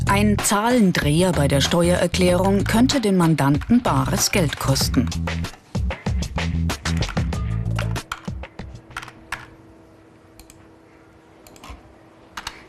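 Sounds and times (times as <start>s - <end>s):
speech: 0.2s - 5.6s
rapid typing on a computer keyboard: 2.6s - 5.6s, 6.9s - 8.4s, 8.9s - 9.5s, 11.5s - 12.6s.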